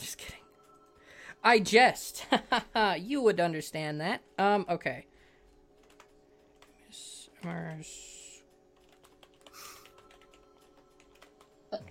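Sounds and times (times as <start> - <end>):
speech: 1.4 - 5.1, 7.4 - 8.1, 11.7 - 11.9
typing on a computer keyboard: 5.8 - 6.8, 8.7 - 11.6.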